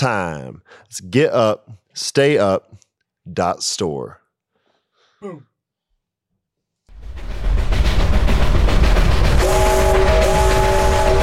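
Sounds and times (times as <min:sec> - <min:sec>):
speech: 0:00.0 - 0:04.2, 0:05.2 - 0:05.5
train rumbling in: 0:06.9 - 0:11.2
sustained multi-tone train horn blaring: 0:09.4 - 0:11.2.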